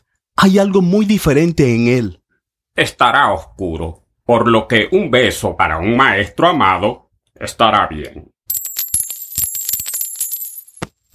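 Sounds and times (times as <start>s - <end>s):
speech: 0.4s - 2.2s, 2.8s - 8.3s
metal coins clattering and jingling: 8.5s - 11.1s.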